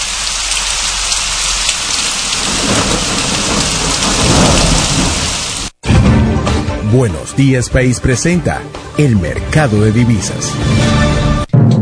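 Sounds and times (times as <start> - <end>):
heavy rain pouring in a thunderstorm: 0.0 - 5.8
deep thunder rumbling in a thunderstorm: 2.2 - 6.2
speech: 6.9 - 11.2.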